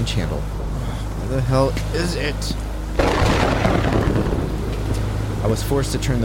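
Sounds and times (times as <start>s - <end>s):
speech: 0.0s - 4.4s, 5.4s - 6.2s
heavy rain pouring on a sailboat: 0.6s - 6.0s
deep rumble of thunder: 2.9s - 5.8s.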